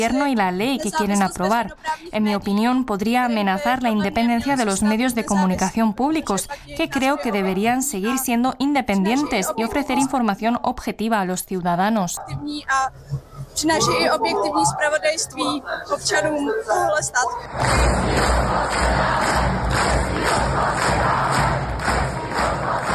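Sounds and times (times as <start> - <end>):
speech: 0.0 - 21.3
large protest crowd chanting in unison: 13.8 - 22.9
protest crowd applause: 17.5 - 22.9
protest crowd cheering: 17.5 - 22.9.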